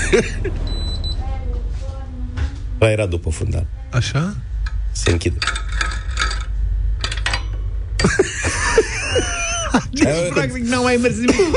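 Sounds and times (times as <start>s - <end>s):
laughter: 0.0s - 0.7s, 8.0s - 11.5s
fan steady low motor hum: 0.0s - 11.5s
speech: 0.1s - 0.7s, 2.8s - 5.6s, 10.0s - 11.5s
fan with a broken blade clanging: 4.5s - 11.5s.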